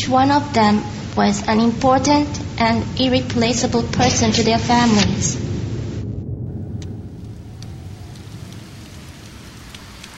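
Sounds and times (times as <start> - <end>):
deep constant rumble: 0.0 - 10.1
steady rain pouring: 0.0 - 10.1
speech: 0.1 - 5.4.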